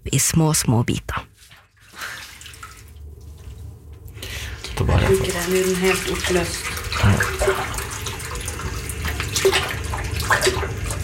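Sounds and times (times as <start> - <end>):
speech: 0.1 - 1.3, 4.8 - 7.6
hot water pouring over papers into a sink: 1.7 - 3.6, 4.3 - 11.0.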